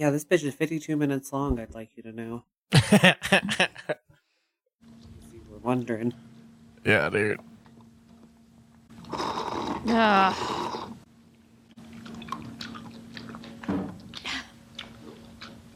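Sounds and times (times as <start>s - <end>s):
speech: 0.0s - 4.0s, 5.6s - 7.5s, 9.1s - 10.6s
woman chewing chunky chicken soup loudly: 11.8s - 15.7s.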